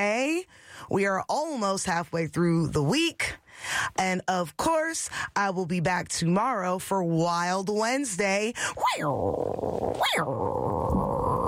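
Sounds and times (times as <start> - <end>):
speech: 0.0 - 11.1
person growling imitating a tiger: 9.0 - 11.4.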